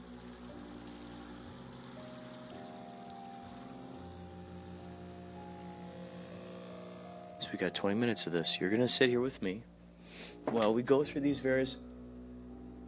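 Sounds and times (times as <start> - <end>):
water bubbling in a bowl: 0.0 - 5.7
ozonator pump humming: 0.0 - 12.8
speech: 7.5 - 9.7, 10.4 - 11.9.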